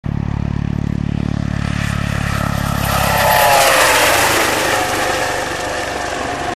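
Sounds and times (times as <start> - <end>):
EC155 helicopter flying by: 0.0 - 6.5.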